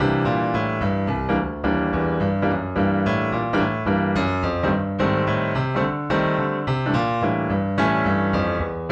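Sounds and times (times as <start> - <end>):
wet piano: 0.0 - 8.9.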